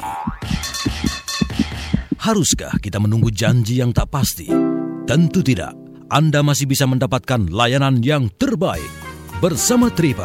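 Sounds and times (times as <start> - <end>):
irregular heartbeat thumping: 0.0 - 4.4
speech: 2.2 - 10.2.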